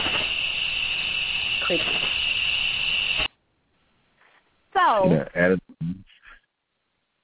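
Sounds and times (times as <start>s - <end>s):
crickets chirping in a steady high trill: 0.0s - 3.3s
speech: 1.7s - 2.0s, 5.0s - 6.1s.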